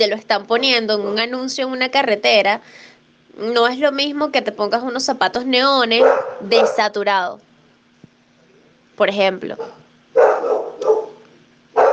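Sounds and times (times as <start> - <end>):
speech: 0.0 - 7.5, 9.0 - 10.9
dog barking: 6.0 - 6.9, 9.6 - 11.9.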